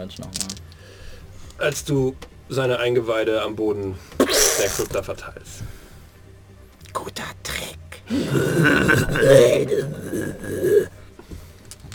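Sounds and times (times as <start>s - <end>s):
speech: 0.0s - 0.6s, 1.6s - 5.8s, 7.0s - 10.9s
long throaty burp: 8.1s - 11.0s.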